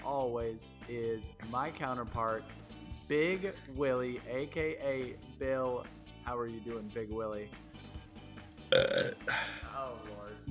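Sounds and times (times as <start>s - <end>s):
speech: 0.3s - 7.7s, 8.7s - 10.5s
burp into a microphone: 8.7s - 9.6s.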